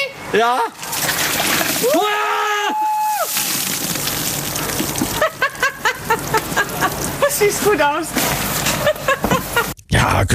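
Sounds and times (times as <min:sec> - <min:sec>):
speech: 0:00.3 - 0:02.8, 0:07.3 - 0:09.3, 0:10.0 - 0:10.3
bucket of ice-cold water splashing over someone's head: 0:00.8 - 0:02.2, 0:03.0 - 0:07.2
person laughing: 0:05.0 - 0:07.4, 0:08.7 - 0:09.8.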